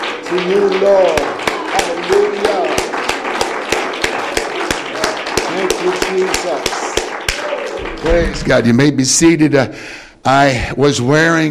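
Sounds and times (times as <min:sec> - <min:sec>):
dense wash of cheering voices: 0:00.0 - 0:08.6
worship service audience clapping in a steady rhythmic beat: 0:00.0 - 0:08.9
speech: 0:00.3 - 0:01.3, 0:08.0 - 0:11.4.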